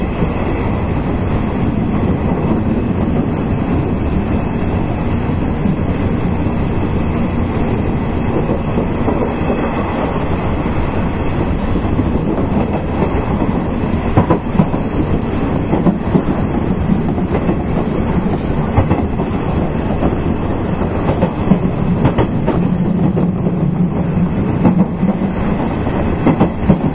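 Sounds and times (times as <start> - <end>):
express electric train running rumble: 0.0 - 26.9
faint rail clicks: 0.0 - 26.9.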